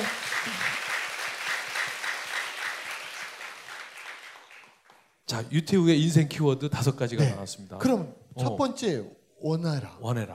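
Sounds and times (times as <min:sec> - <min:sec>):
crowd of people applauding: 0:00.0 - 0:05.2
speech: 0:05.3 - 0:10.3.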